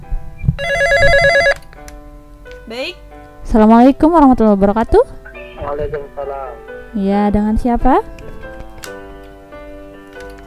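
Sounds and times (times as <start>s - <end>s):
telephone ringing with a trilling electronic burst for an incoming call: 0.6s - 1.6s
speech: 2.7s - 8.2s.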